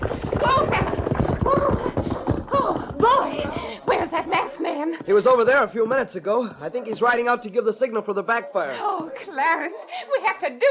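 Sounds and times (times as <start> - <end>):
horse hooves clip-clopping: 0.0 - 6.1
speech: 4.8 - 10.6.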